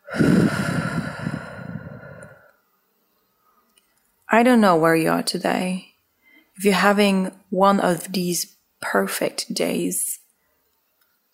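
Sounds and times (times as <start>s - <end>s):
deep human breath: 0.0s - 2.6s
speech: 4.3s - 5.9s, 6.6s - 10.2s.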